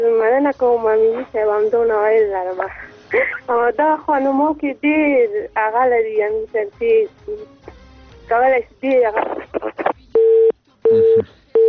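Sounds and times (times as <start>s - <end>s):
speech: 0.4s - 7.6s, 8.3s - 9.8s, 10.9s - 11.4s
telephone busy signal after a call is cut off: 10.2s - 11.6s.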